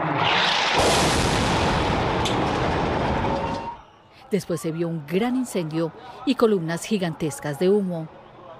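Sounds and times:
explosion in a hospital parking lot: 0.0 - 3.8
speech: 4.3 - 8.2.

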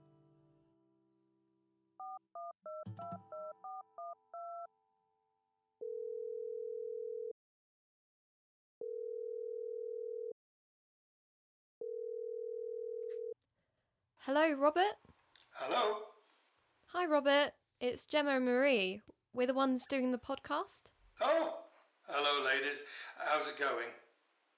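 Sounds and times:
telephone ringback tone: 2.0 - 4.7, 5.8 - 7.4, 8.8 - 10.4, 11.8 - 13.4
speech: 14.3 - 16.1, 16.9 - 24.0.

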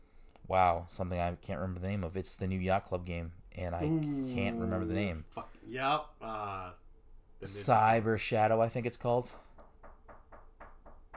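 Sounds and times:
speech: 0.5 - 6.8, 7.4 - 9.4
knocking on a door: 9.5 - 11.1.

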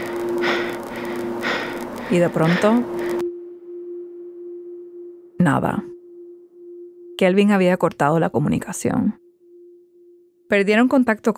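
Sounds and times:
caller breathing over a phone line: 0.0 - 4.1
low electrical hum: 0.0 - 9.3
speech: 2.1 - 3.0, 5.4 - 5.9, 7.2 - 9.2, 10.5 - 11.3.

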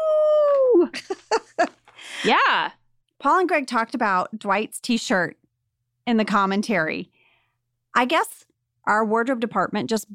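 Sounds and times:
person doing a wolf-howl imitation: 0.0 - 0.9
speech: 2.2 - 5.4, 6.1 - 7.1, 8.0 - 10.1.

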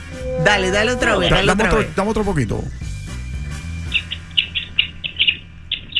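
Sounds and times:
speech: 0.4 - 2.8
small bird chirping: 3.9 - 5.9.

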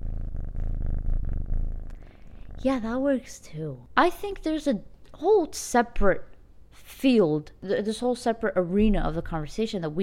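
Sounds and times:
cat purring: 0.0 - 4.7
speech: 2.6 - 10.0.

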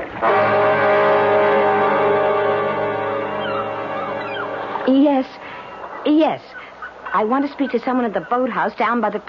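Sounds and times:
small stalled boat motor restarting and droning: 0.2 - 5.8
speech: 6.2 - 6.6, 7.2 - 9.2.

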